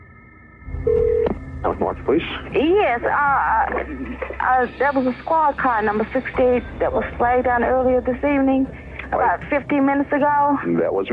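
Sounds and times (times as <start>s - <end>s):
electronic telephone tone: 0.7s - 1.4s
low hum: 0.9s - 10.9s
speech: 1.6s - 11.1s.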